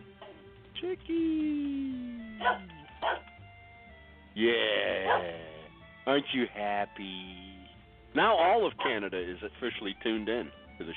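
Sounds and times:
quiet hum: 0.0s - 5.8s
speech: 0.8s - 3.2s, 4.4s - 7.5s, 8.1s - 10.9s
dog barking: 2.4s - 3.3s, 5.0s - 5.4s, 8.8s - 9.1s.

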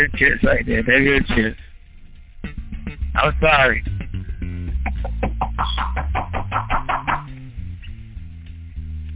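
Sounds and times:
speech: 0.0s - 1.7s, 3.2s - 3.9s
steady low musical hum: 0.0s - 9.1s
sharp knocks on a door: 4.8s - 7.1s.

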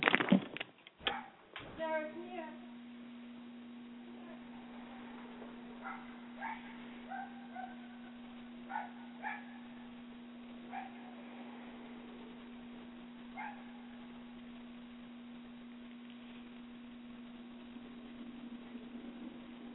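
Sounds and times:
steady electrical hum: 0.0s - 19.7s
small dog barking outside: 1.1s - 1.4s, 5.8s - 9.9s, 10.6s - 11.2s, 13.3s - 14.0s.

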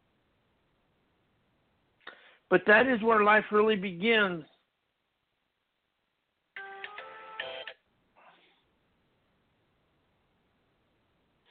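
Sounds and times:
speech: 2.5s - 4.5s
phone ringing with a bright electronic tone: 6.6s - 7.8s.

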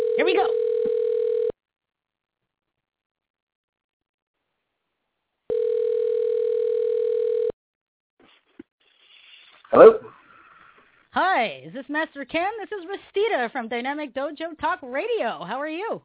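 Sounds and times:
telephone ringback tone after dialing: 0.0s - 1.5s, 5.5s - 7.5s
speech: 11.4s - 16.0s.

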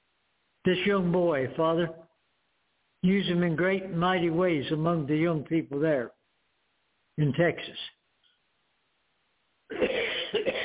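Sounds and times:
speech: 0.6s - 2.0s, 3.0s - 6.2s, 7.2s - 7.9s
person coughing from a dry throat: 9.7s - 10.6s
throat clearing from a dry throat: 9.7s - 10.6s.

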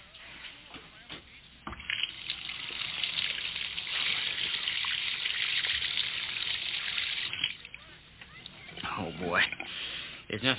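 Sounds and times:
water flowing down a sink drain: 1.6s - 7.8s, 8.4s - 9.7s
speech: 10.4s - 10.5s.

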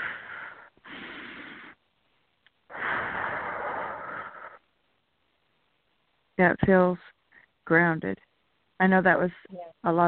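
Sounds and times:
deep breath taken during an affirmation and grounding exercise: 0.0s - 1.8s, 2.7s - 4.7s
speech: 6.4s - 10.0s.

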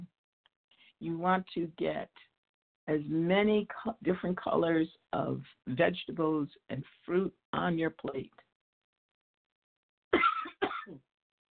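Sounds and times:
speech: 1.0s - 2.3s, 2.9s - 8.4s
person with allergies clearing throat: 10.2s - 11.0s.

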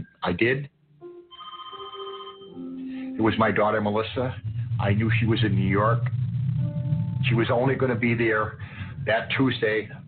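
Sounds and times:
speech: 0.2s - 0.8s, 3.2s - 6.2s, 7.2s - 10.0s
telephone ringing with electronic warble: 1.3s - 2.8s.

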